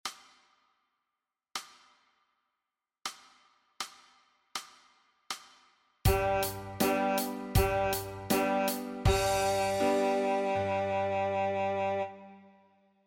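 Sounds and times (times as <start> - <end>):
saxophone note E: 6.1 - 12.7.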